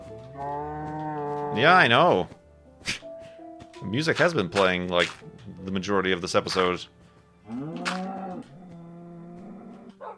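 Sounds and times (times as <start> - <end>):
cow mooing: 0.4 - 1.6, 7.4 - 10.0
speech: 1.6 - 3.0, 3.8 - 7.8.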